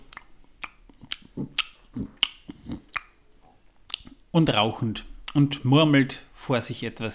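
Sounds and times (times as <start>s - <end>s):
wet lip smacking: 0.0s - 3.2s, 3.9s - 4.2s
soft mouth puffs: 0.0s - 4.2s
speech: 4.4s - 7.1s.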